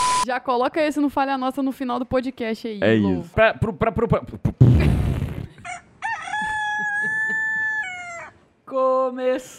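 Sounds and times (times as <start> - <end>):
speech: 0.2 - 4.8, 8.7 - 9.5
rooster crowing: 5.6 - 8.4
laughter: 6.4 - 7.9.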